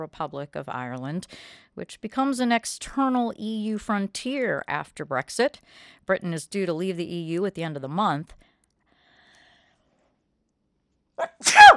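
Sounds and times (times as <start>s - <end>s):
speech: 0.0s - 8.4s, 11.2s - 11.7s
person sneezing: 11.2s - 11.7s.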